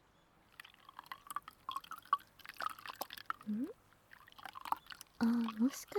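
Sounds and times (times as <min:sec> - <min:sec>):
lukewarm water splashing and dripping into a washbasin: 0:00.5 - 0:05.9
brief hummed voice sound: 0:03.5 - 0:03.8
speech: 0:03.5 - 0:03.8, 0:05.2 - 0:05.9.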